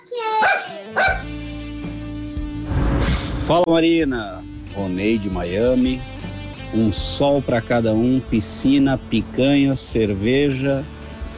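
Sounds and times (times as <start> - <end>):
dog barking with a high yappy tone: 0.3 - 1.3
speech: 3.5 - 6.1, 6.7 - 11.0.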